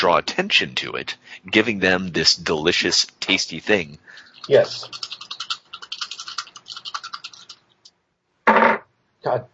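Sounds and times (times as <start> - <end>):
speech: 0.0 - 5.2, 9.2 - 9.5
dice landing on a table with a thud: 8.5 - 8.8.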